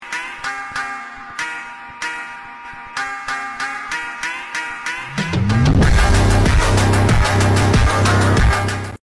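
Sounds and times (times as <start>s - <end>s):
music playing in a car: 5.1s - 9.0s.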